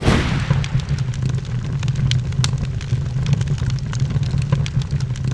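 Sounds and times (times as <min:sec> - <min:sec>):
fire spell: 0:00.0 - 0:01.9
human burning: 0:00.0 - 0:05.2.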